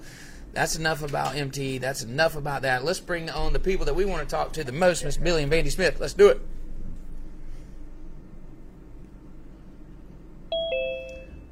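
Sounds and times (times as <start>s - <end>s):
steady low rumble: 0.0s - 11.4s
speech: 0.6s - 6.6s
two-tone doorbell chime: 10.5s - 11.4s.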